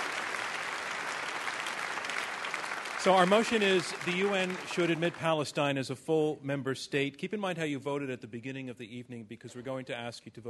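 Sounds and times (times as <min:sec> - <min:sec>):
audience applause at the end of a debate round: 0:00.0 - 0:05.6
speech: 0:03.0 - 0:10.4.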